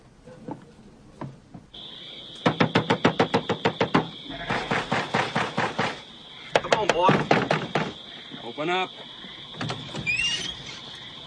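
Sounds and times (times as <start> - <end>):
knocking on the door of a makeshift farm shack at night: 2.4 - 6.0, 6.6 - 8.0
speech: 8.6 - 9.1.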